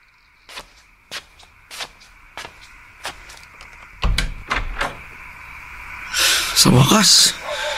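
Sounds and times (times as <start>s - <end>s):
room door rattling and banging: 4.0s - 5.1s
speech: 6.6s - 7.4s.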